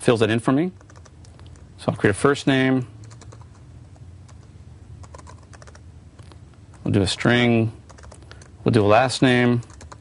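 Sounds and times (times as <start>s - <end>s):
speech: 0.0s - 0.9s, 1.8s - 2.9s, 6.9s - 7.8s, 8.6s - 9.7s
faint typing on a computer keyboard entering a code snippet: 0.8s - 1.6s, 3.0s - 3.6s, 4.3s - 6.9s, 7.9s - 8.5s, 9.6s - 9.9s.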